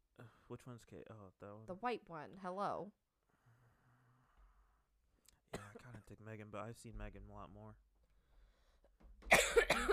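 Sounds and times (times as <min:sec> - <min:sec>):
speech: 0:00.5 - 0:03.1, 0:06.1 - 0:07.8
person coughing harshly: 0:05.5 - 0:06.1, 0:09.3 - 0:09.9.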